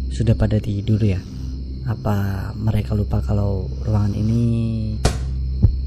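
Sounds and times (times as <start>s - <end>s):
speech: 0.1s - 5.1s
ball dropping and bouncing: 5.0s - 5.8s.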